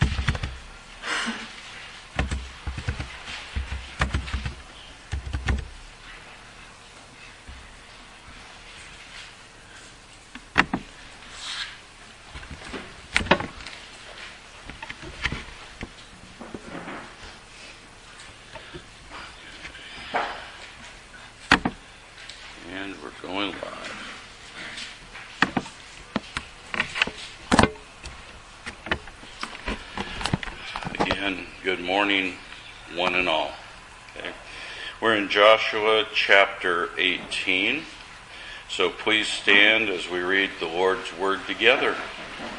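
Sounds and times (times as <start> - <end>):
typing on a computer keyboard: 0.0 - 0.6, 2.2 - 5.7
soft hum: 0.0 - 42.5
speech: 31.3 - 32.4, 33.0 - 33.5, 35.0 - 38.0, 38.8 - 42.2.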